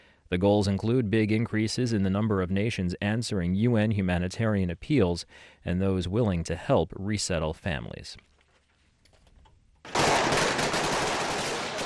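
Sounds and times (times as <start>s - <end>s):
speech: 0.3s - 8.3s
heavy automatic gunfire of security forces fighting militants at night: 9.9s - 11.8s.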